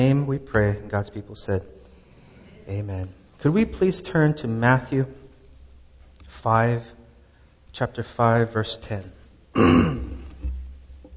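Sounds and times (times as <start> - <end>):
speech: 0.0 - 1.8, 2.7 - 5.2, 6.3 - 7.0, 7.7 - 10.1
loud rough throat clearing: 9.6 - 10.6.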